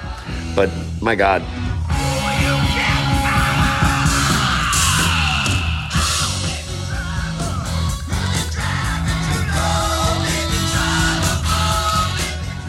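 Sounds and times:
rock song with driving guitars and drums: 0.0 - 12.6
speech: 0.6 - 1.8
male rock vocalist screaming and yelling: 2.2 - 6.6.

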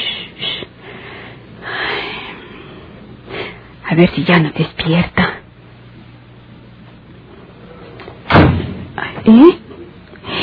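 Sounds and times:
speech: 3.9 - 5.3
door slamming shut: 8.3 - 9.0.

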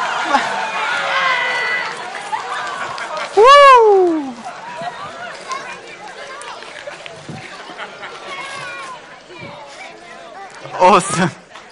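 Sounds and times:
laughter: 0.0 - 0.9, 2.1 - 3.6, 7.4 - 8.8
children chattering: 0.0 - 11.7
loud sweeping vocal whoop from one person: 3.4 - 4.4
speech: 10.9 - 11.4.

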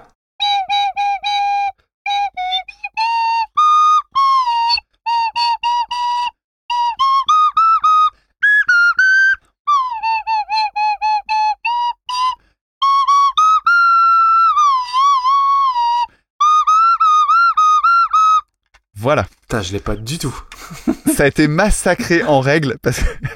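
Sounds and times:
toy whistle playing a classical tune: 0.4 - 18.5
speech: 19.1 - 23.3
laughter: 20.3 - 23.3.

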